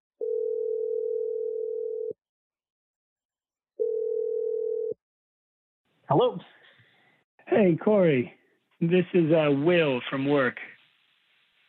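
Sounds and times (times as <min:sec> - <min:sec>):
ringback tone on an outgoing phone call: 0:00.2 - 0:02.2, 0:03.8 - 0:05.0
speech: 0:06.1 - 0:06.6, 0:07.5 - 0:10.7.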